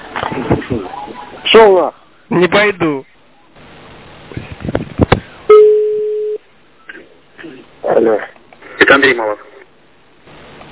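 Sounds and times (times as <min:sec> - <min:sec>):
speech: 0:01.6 - 0:03.1, 0:08.0 - 0:09.5
telephone line tone while calling a friend: 0:05.5 - 0:06.4.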